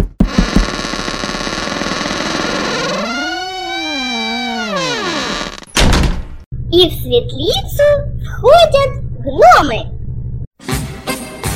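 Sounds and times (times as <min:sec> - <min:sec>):
door creaking open: 0:00.3 - 0:06.3
speech: 0:06.8 - 0:09.9.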